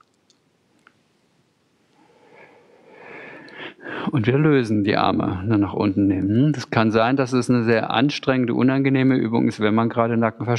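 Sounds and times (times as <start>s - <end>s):
slow breath during an arm-rotation exercise in a therapeutic yoga session: 1.9s - 4.1s
speech: 4.1s - 10.5s.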